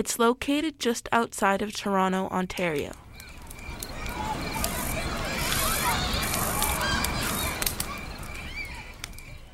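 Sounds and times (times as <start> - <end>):
speech: 0.0 - 3.0
steady open-air rustle: 1.0 - 9.5
birds honking and chirping outdoors at Six Nations near Toronto Ontario: 3.0 - 9.5.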